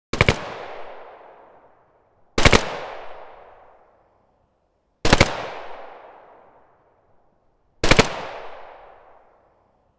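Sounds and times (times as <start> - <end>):
gunshots from a long-barrel gun: 0.1 - 1.2, 2.4 - 3.4, 5.1 - 6.2, 7.8 - 9.0.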